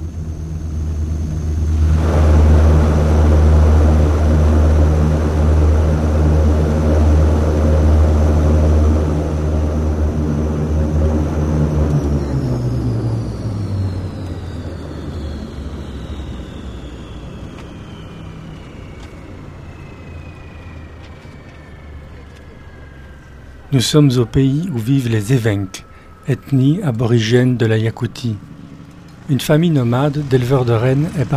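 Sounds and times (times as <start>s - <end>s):
propeller airplane landing on ice in snowy Yakutia: 0.0s - 31.3s
speech: 23.8s - 28.6s, 29.3s - 31.3s.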